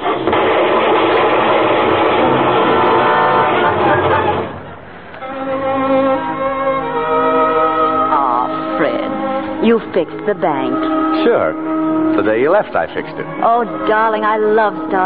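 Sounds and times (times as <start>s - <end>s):
car engine rumbling: 0.0s - 15.0s
voices: 8.0s - 15.0s
speech: 9.8s - 15.0s.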